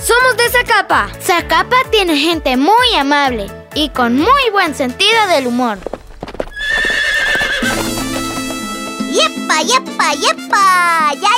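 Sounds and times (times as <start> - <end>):
speech: 0.5 - 6.0, 9.2 - 11.3
horse hooves clip-clopping: 5.2 - 9.6
ridden horse whinnying: 6.0 - 9.1.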